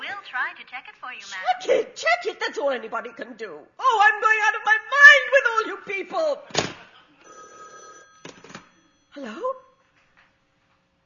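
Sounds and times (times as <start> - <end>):
speech: 0.3 - 6.7, 9.2 - 9.6
telephone bell ringing: 7.2 - 9.8.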